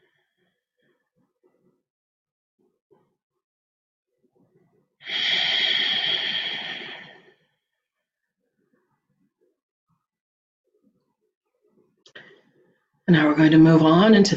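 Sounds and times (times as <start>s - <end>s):
deep breath in and out: 5.0s - 7.4s
speech: 13.1s - 14.3s.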